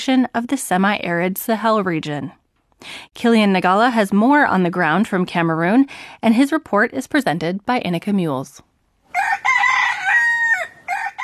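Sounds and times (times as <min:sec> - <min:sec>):
speech: 0:00.0 - 0:09.6
rooster crowing at dawn at a refugee camp in northern Cameroon: 0:09.1 - 0:11.2.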